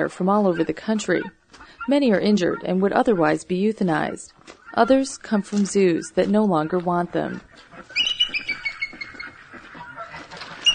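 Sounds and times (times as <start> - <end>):
speech: 0.0 - 8.0
one-winged female bald eagle giving high-pitched chirping calls at a bird sanctuary: 0.4 - 10.7.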